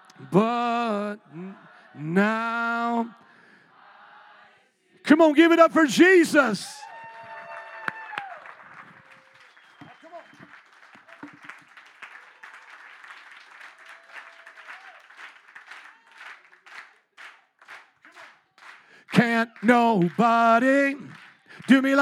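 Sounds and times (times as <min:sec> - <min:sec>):
gospel song: 0:00.0 - 0:21.9
speech: 0:00.2 - 0:03.2, 0:05.0 - 0:06.8, 0:19.7 - 0:21.9
crowd clapping along to a gospel song: 0:06.8 - 0:21.9.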